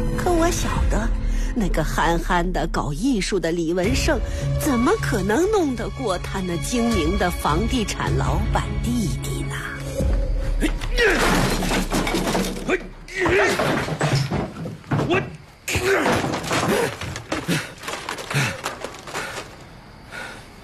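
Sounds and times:
speech: 0.4s - 9.7s, 15.1s - 15.3s
debris of a model structure cracking and clattering: 10.8s - 19.7s
architectural scale model being struck and smashed: 11.1s - 19.6s.

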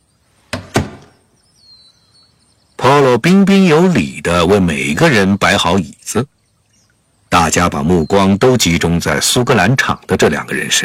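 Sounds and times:
living-room door pulled shut with solid thuds: 0.5s - 1.2s
speech: 3.0s - 6.4s, 7.3s - 10.8s.

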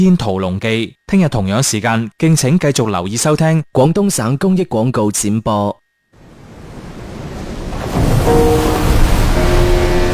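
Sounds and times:
speech: 0.0s - 5.8s
ocean waves surging: 6.2s - 10.1s
faint sustained tone: 8.0s - 10.1s.

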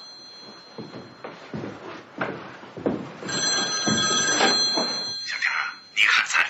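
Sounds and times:
telephone bell ringing with a shrill trilling tone: 0.0s - 1.2s, 3.3s - 6.4s
household movement: 0.0s - 6.0s.

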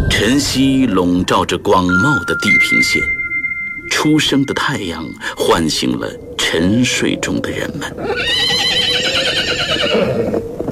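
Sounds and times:
speech: 0.2s - 3.2s, 4.0s - 10.5s
war horse whinnying: 8.0s - 10.4s.

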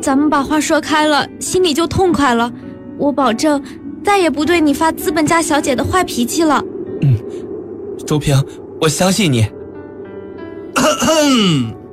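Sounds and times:
speech: 0.0s - 7.2s, 8.1s - 9.6s, 10.8s - 11.8s
sudden cough or sharp throat-clearing: 10.8s - 11.7s.

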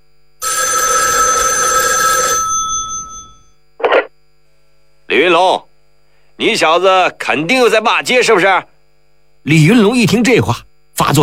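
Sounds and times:
old-fashioned telephone bell ringing: 0.4s - 3.6s
speech: 6.4s - 8.7s, 9.4s - 11.2s.

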